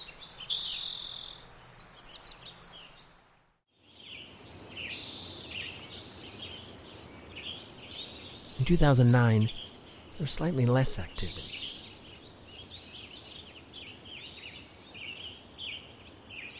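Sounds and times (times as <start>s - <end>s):
chorus of many wild birds singing and chirping in spring: 0.0s - 16.5s
steady natural hiss: 0.0s - 16.5s
speech: 8.7s - 9.6s, 10.2s - 11.6s.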